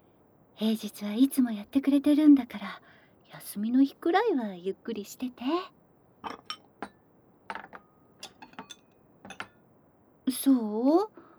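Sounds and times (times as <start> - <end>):
speech: 0.6 - 6.6, 10.3 - 11.2
dishes clinking as plates are cleared away to be washed: 6.2 - 9.6.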